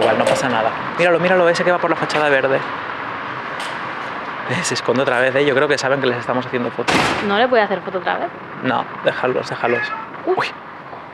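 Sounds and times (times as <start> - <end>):
steady low noise: 0.0 - 11.1
speech: 0.1 - 3.0, 4.5 - 10.7
cat meowing: 9.5 - 10.5.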